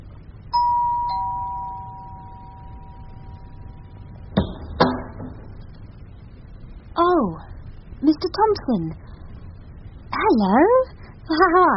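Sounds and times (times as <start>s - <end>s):
two-note ding-dong doorbell chime: 0.5s - 4.0s
sharp knocks or clatters: 4.3s - 5.5s
speech: 8.2s - 9.2s, 10.3s - 11.7s.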